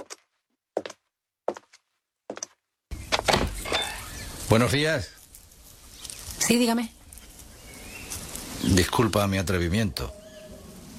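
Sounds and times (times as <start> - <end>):
outside noise: 0.0 - 10.9
door swinging open: 3.1 - 4.1
speech: 4.5 - 5.2, 6.5 - 7.0, 8.6 - 10.2.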